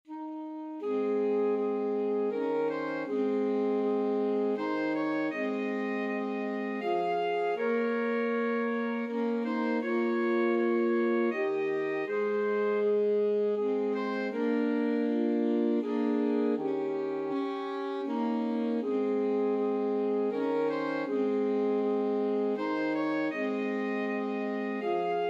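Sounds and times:
alto sax trio playing a Christmas carol: 0:00.1 - 0:25.2.

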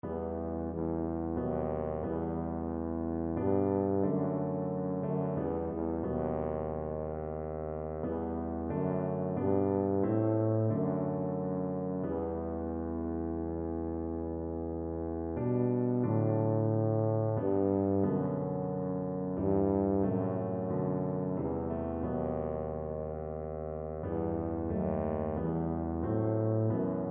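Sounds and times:
tuba: 0:00.0 - 0:27.0.

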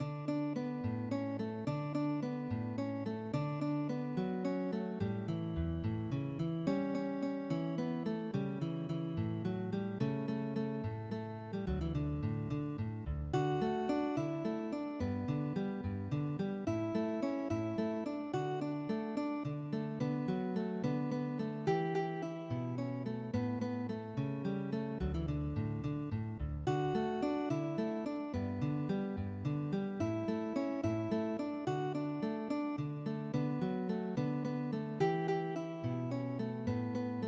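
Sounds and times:
guitar: 0:00.0 - 0:37.2.

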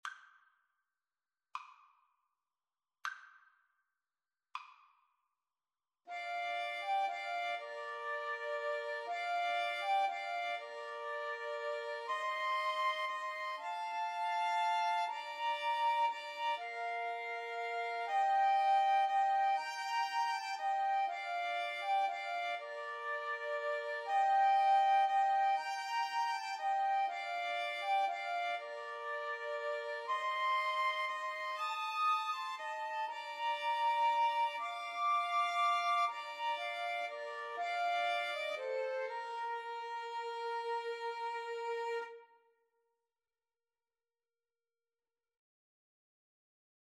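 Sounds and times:
cello: 0:06.1 - 0:42.4
flute: 0:06.1 - 0:42.4
violin: 0:06.1 - 0:42.4.

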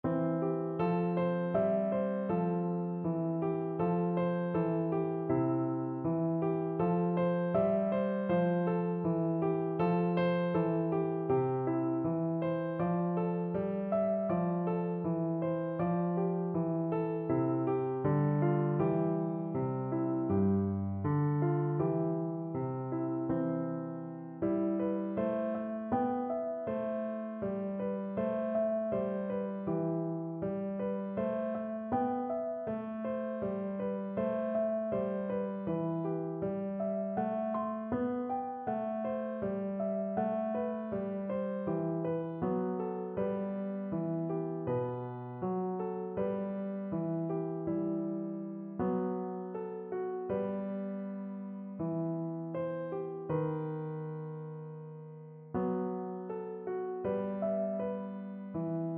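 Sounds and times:
piano melody: 0:00.0 - 0:58.9.

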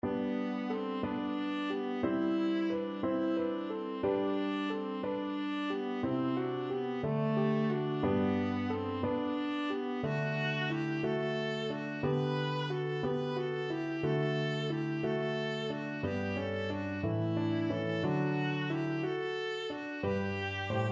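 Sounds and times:
viola playing a pastorale: 0:00.0 - 0:20.9.

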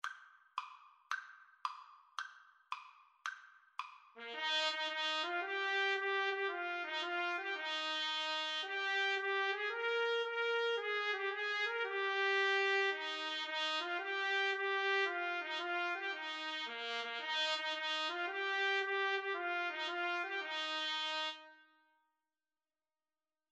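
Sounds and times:
trumpet melody: 0:04.2 - 0:21.8.

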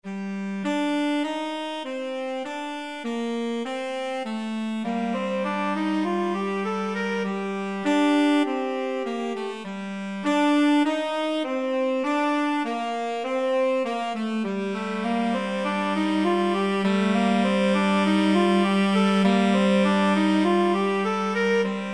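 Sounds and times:
tenor saxophone duet: 0:00.0 - 0:21.9.

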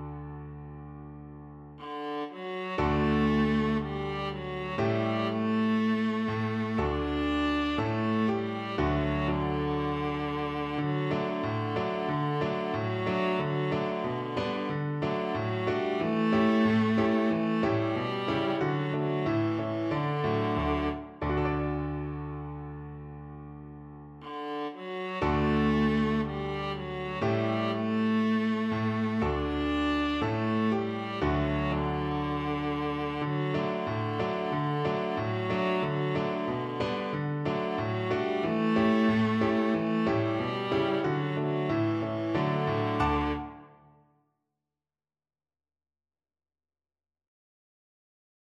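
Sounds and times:
viola playing: 0:01.8 - 0:22.2, 0:24.2 - 0:43.9.

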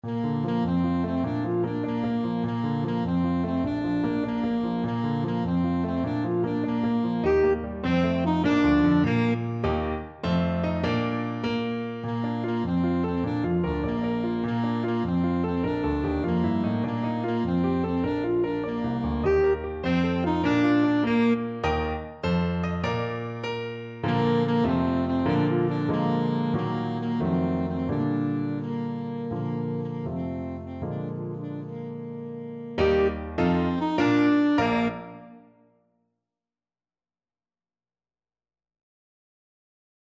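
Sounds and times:
saxophone melody: 0:00.0 - 0:35.7.

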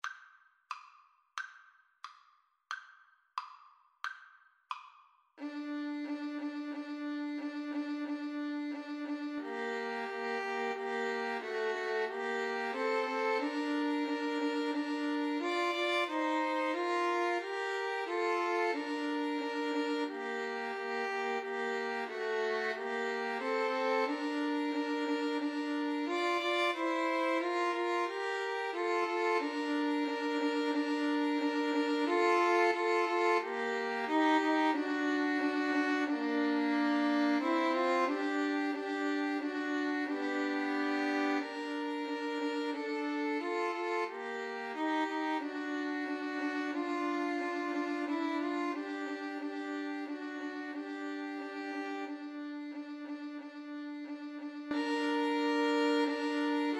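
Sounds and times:
cello: 0:05.4 - 0:56.7
two violins: 0:05.4 - 0:56.7.

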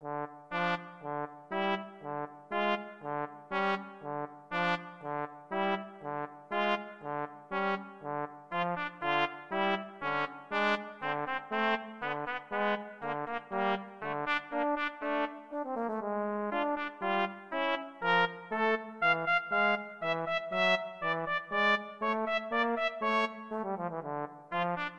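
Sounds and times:
trumpet and trombone duet: 0:00.0 - 0:24.9.

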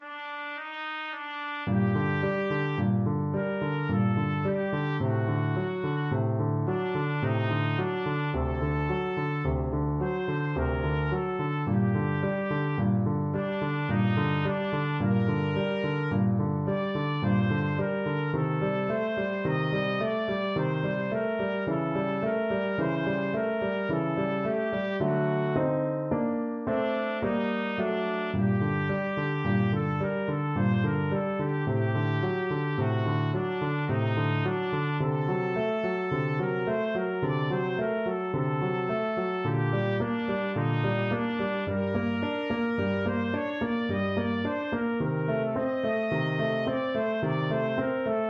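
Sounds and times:
trumpet playing classical piece: 0:00.0 - 0:48.2.

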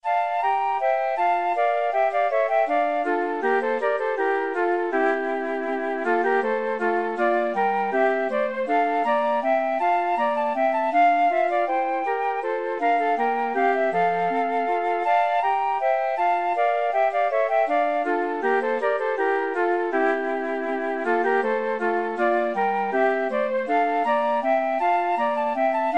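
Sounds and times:
2 flutes: 0:00.0 - 0:25.9
clarinet: 0:00.0 - 0:25.9.

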